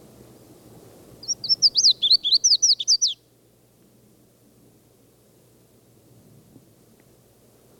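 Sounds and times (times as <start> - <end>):
Red-faced Warbler song at the foot of Mount Elden Road: 1.2 - 3.3.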